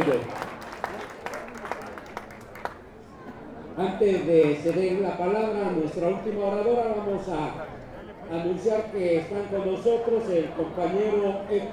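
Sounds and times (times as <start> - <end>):
speech: 0.0 - 0.5, 3.8 - 11.7
crowd applauding at a community water caravan gathering in Teotongo: 0.0 - 3.0.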